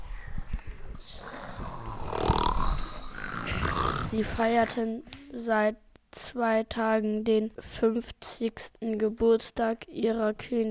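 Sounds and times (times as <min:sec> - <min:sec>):
guards snoring loudly: 0:01.0 - 0:04.6
speech: 0:04.1 - 0:10.6.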